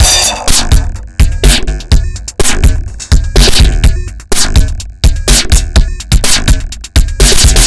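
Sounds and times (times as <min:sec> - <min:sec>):
strange drums: 0:00.0 - 0:07.6.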